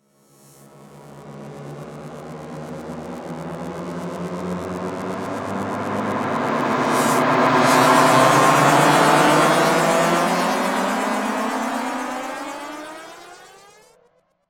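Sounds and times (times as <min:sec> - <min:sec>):
cinematic trailer rise: 0:04.9 - 0:14.0.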